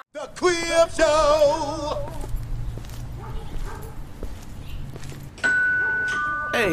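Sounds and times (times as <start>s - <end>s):
speech: 0.3s - 2.1s
dog barking in short bursts: 3.2s - 4.1s, 5.8s - 6.2s
doorbell chime ringing ding-dong: 5.4s - 6.7s.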